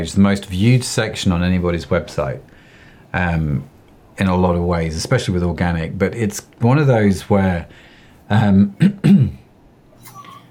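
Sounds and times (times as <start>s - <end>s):
speech: 0.0s - 9.4s
throat clearing: 8.8s - 9.4s.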